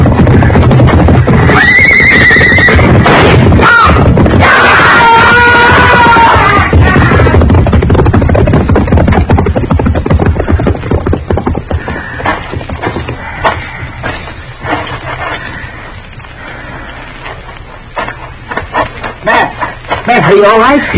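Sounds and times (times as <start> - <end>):
dense rumbling noise: 0.0 - 20.9
horse whinnying in a corral: 1.4 - 3.0
speech: 20.4 - 20.9.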